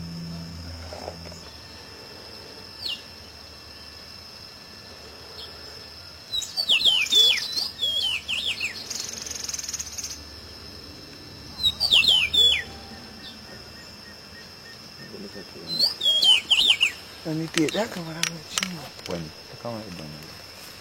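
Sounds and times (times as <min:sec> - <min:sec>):
continuous high-pitched drone: 0:00.0 - 0:02.6
masked yellowthroat song of fast tumbling whistled notes: 0:06.3 - 0:10.2, 0:11.5 - 0:15.1, 0:15.7 - 0:17.8
speech: 0:17.4 - 0:20.3.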